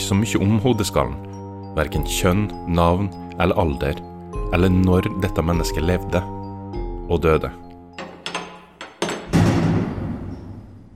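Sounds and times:
speech: 0:00.1 - 0:06.4, 0:07.1 - 0:07.6
heavy metal door latch and hinge knocks: 0:08.0 - 0:10.4
heavy metal prison cell door slamming shut: 0:09.1 - 0:10.9.

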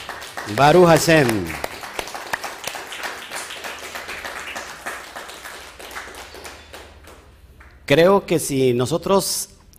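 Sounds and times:
audience applause: 0:00.0 - 0:07.8
speech: 0:00.5 - 0:01.7, 0:07.9 - 0:09.5.

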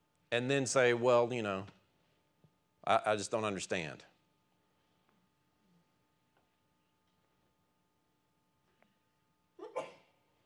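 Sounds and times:
speech: 0:00.3 - 0:01.8, 0:02.8 - 0:04.1
sneeze: 0:09.6 - 0:10.2.

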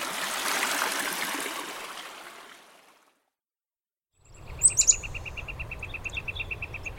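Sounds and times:
creek running full after a snowy year: 0:00.0 - 0:03.1
courting pair of chickadees chirping in a shrubby thicket: 0:04.4 - 0:06.9.

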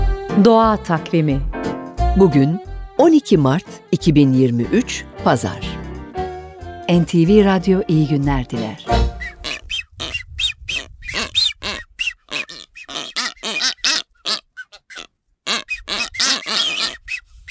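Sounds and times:
speech: 0:00.4 - 0:01.5, 0:02.1 - 0:05.8, 0:06.9 - 0:09.0
blue-footed booby calls with harsh grunting squawks and whistling honks: 0:09.0 - 0:17.4.

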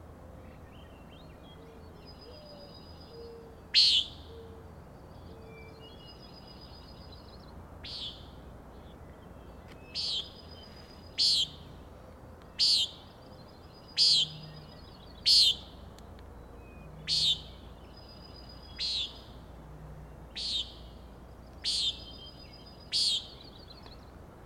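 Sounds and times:
common nighthawk peent calls at Schoodic Head, Winter Harbor, Maine: 0:03.7 - 0:04.2, 0:10.0 - 0:10.4, 0:11.2 - 0:11.6, 0:12.6 - 0:13.0, 0:14.0 - 0:15.7, 0:16.9 - 0:17.6, 0:18.6 - 0:19.3, 0:20.4 - 0:21.0, 0:21.6 - 0:23.4.

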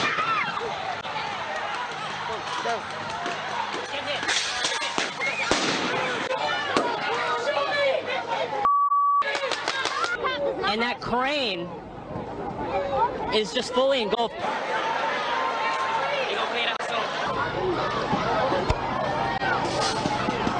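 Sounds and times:
people shouting: 0:00.0 - 0:08.6, 0:13.7 - 0:20.5
loud crowd noise: 0:00.0 - 0:20.5
firework bangs and crackles in a street: 0:04.8 - 0:06.2
brief electronic beep: 0:08.6 - 0:09.3
speech: 0:11.0 - 0:15.0.

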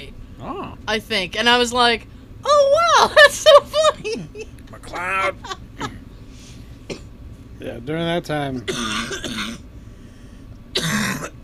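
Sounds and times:
speech: 0:00.4 - 0:06.0, 0:07.6 - 0:09.7
laughter: 0:03.0 - 0:06.0
harsh cough: 0:08.6 - 0:09.6, 0:10.8 - 0:11.4.

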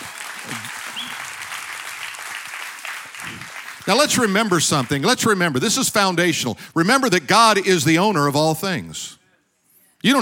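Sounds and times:
audience clapping: 0:00.0 - 0:05.6
speech: 0:03.9 - 0:09.2.

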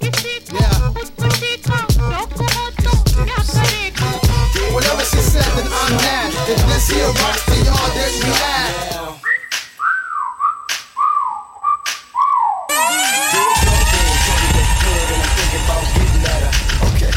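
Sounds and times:
loud dense wash of overlapping wailing tones: 0:01.0 - 0:09.3, 0:12.7 - 0:17.1
swooping whistled notes: 0:03.6 - 0:16.6
sharp percussive snaps: 0:10.7 - 0:11.0, 0:11.8 - 0:12.4.

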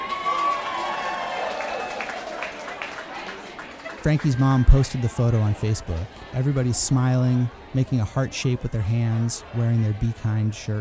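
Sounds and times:
scattered clapping: 0:00.0 - 0:04.9
crowd cheering: 0:00.0 - 0:10.7
speech: 0:04.0 - 0:10.7.

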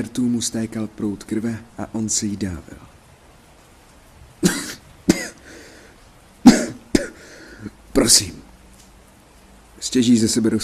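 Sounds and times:
speech: 0:00.0 - 0:02.9, 0:08.0 - 0:08.4, 0:09.8 - 0:10.6
man coughing harshly: 0:04.4 - 0:05.4, 0:06.4 - 0:07.3.

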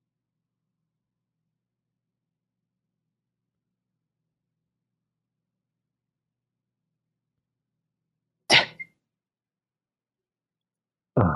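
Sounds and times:
person sneezing: 0:08.5 - 0:08.8.

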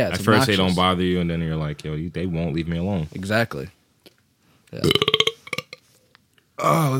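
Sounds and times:
speech: 0:00.0 - 0:03.8, 0:04.7 - 0:05.1, 0:06.6 - 0:06.9
loud rattling burp: 0:04.8 - 0:05.8.

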